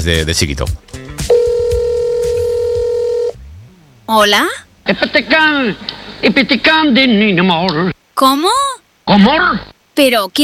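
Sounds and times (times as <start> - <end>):
speech: 0.0 - 1.3, 4.1 - 10.4
faint low rumbles: 0.7 - 8.1
steady telephone dialing tone before a call: 1.3 - 3.4.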